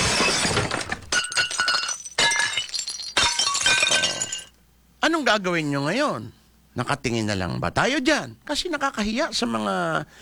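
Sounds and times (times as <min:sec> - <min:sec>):
porcelain plates being smashed: 0:00.0 - 0:04.5
speech: 0:05.1 - 0:10.2.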